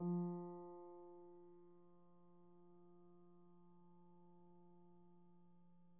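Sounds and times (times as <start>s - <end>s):
soft Steinway piano: 0.0s - 3.4s.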